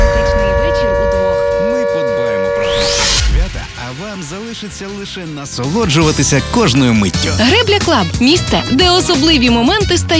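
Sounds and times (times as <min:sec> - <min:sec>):
person making an announcement: 0:00.0 - 0:02.6, 0:03.4 - 0:10.1
air raid siren wailing: 0:00.0 - 0:04.4
steady tonal backing: 0:00.0 - 0:10.1
speech: 0:04.6 - 0:10.1.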